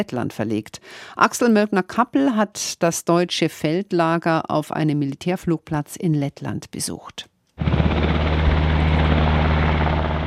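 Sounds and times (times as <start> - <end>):
speech: 0.0 - 7.9
Black Hawk military helicopter taking off: 7.6 - 10.2.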